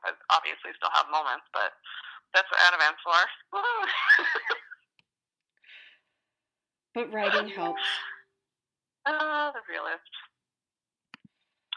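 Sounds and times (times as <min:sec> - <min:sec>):
speech: 0:00.3 - 0:04.6, 0:06.9 - 0:08.1, 0:09.0 - 0:10.3
laughter: 0:03.6 - 0:04.8
bright tonal phone notification chime: 0:07.3 - 0:08.2.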